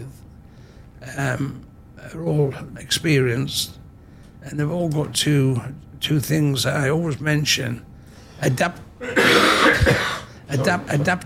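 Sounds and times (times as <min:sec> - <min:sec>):
speech: 0:01.0 - 0:03.8, 0:04.4 - 0:11.2
rough raspy cough: 0:09.0 - 0:10.4.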